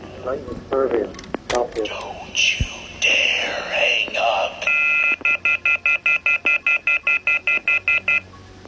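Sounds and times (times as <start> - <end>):
speech: 0.3 - 2.7
phone emitting short bright electronic beeps: 4.2 - 8.3.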